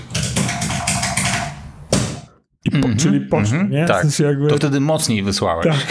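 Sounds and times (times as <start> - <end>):
rapid tapping on a hard surface mimicking fast keyboard typing: 0.0 - 2.2
speech: 2.8 - 5.8.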